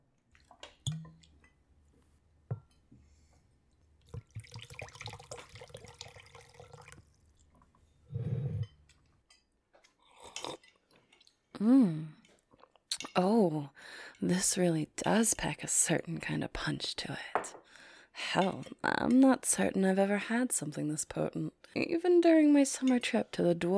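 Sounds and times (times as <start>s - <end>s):
drinks being poured: 4.0s - 7.7s
speech: 11.6s - 12.1s, 13.2s - 17.6s, 18.2s - 23.7s.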